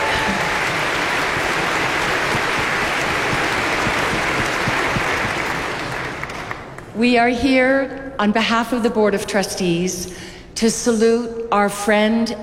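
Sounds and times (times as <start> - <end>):
large concert audience applauding in a tent: 0.0 - 6.8
speech: 7.0 - 12.4.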